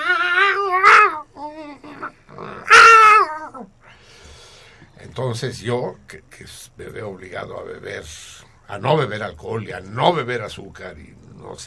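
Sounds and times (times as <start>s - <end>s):
cat yowling at night: 0.0s - 3.7s
speech: 5.2s - 11.6s.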